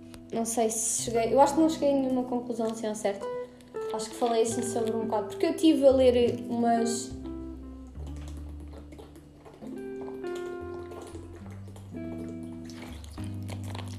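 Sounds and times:
speech: 0:00.3 - 0:07.2
person drinking water: 0:02.6 - 0:05.4, 0:07.1 - 0:13.9.

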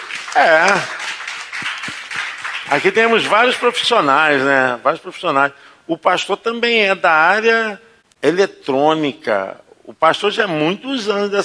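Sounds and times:
audience applause: 0:00.0 - 0:03.8
speech: 0:00.4 - 0:01.0, 0:02.7 - 0:11.4.

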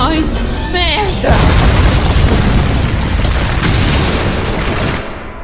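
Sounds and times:
speech: 0:00.1 - 0:01.6
column collapsing into rubble: 0:01.3 - 0:05.2.

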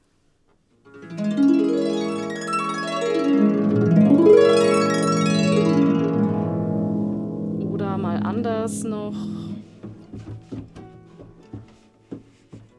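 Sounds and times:
harp glissandi across a small set of repeated pitches: 0:01.0 - 0:10.1.

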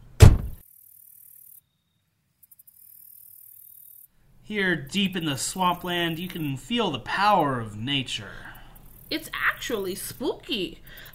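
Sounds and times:
car door slamming shut in swampland: 0:00.2 - 0:00.6
speech: 0:04.5 - 0:08.5, 0:09.1 - 0:11.1.

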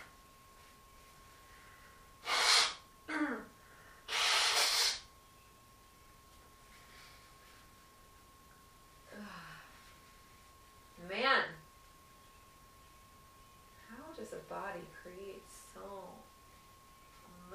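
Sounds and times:
person blowing nose: 0:02.2 - 0:02.8, 0:04.1 - 0:05.1
faint snuffles: 0:02.3 - 0:02.8
speech: 0:14.4 - 0:16.2.

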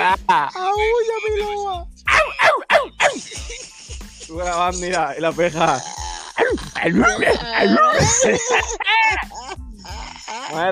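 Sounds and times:
laughter: 0:00.0 - 0:05.8, 0:06.8 - 0:09.6
speech: 0:00.1 - 0:01.9, 0:04.3 - 0:08.8
dog barking: 0:02.1 - 0:03.3.

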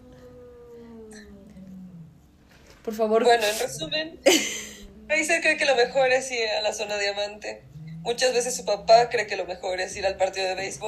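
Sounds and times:
cats fighting and yowling: 0:00.0 - 0:02.5, 0:03.5 - 0:05.6, 0:07.6 - 0:09.1
speech: 0:02.8 - 0:10.8.

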